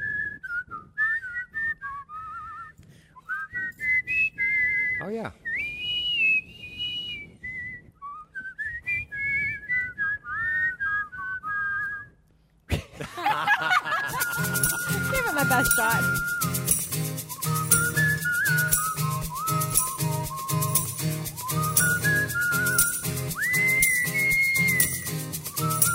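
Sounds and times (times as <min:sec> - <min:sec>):
two people whistling a melody in harmony: 0:00.0 - 0:12.2, 0:13.9 - 0:25.9
speech: 0:05.0 - 0:05.5, 0:15.6 - 0:16.9
people laughing: 0:12.7 - 0:16.3.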